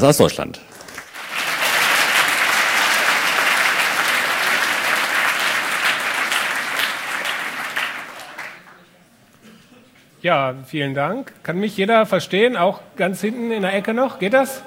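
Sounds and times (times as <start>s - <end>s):
speech: 0.0s - 0.8s, 10.2s - 14.6s
audience applause welcoming a speaker before a talk: 0.8s - 8.8s.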